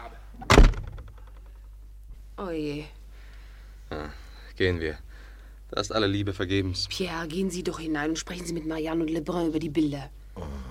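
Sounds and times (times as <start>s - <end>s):
door closing with a thunk: 0.4s - 1.2s
door rattling as it settles: 0.4s - 1.5s
speech: 2.4s - 3.0s, 4.0s - 5.1s, 5.7s - 10.6s.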